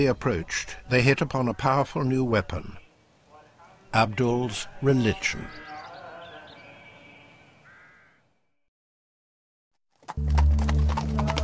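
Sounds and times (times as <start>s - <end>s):
speech: 0.0s - 2.8s, 3.9s - 5.6s, 10.1s - 10.4s
crows cawing in the open air: 5.1s - 8.4s
horse-drawn carriage hooves clip-clopping: 10.0s - 11.4s.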